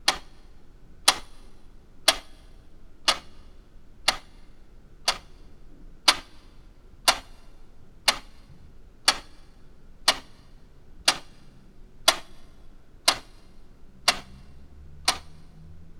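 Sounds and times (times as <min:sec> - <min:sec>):
clock ticking: 0:00.1 - 0:01.4, 0:02.1 - 0:02.4, 0:03.1 - 0:03.4, 0:04.1 - 0:04.4, 0:05.1 - 0:05.3, 0:06.1 - 0:06.4, 0:07.1 - 0:07.4, 0:08.1 - 0:08.4, 0:09.0 - 0:09.5, 0:10.1 - 0:10.4, 0:11.0 - 0:11.4, 0:12.1 - 0:15.6.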